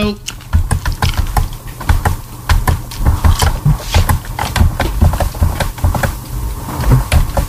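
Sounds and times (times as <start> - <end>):
low hum: 0.0 - 7.4
computer keyboard typing: 0.4 - 6.2.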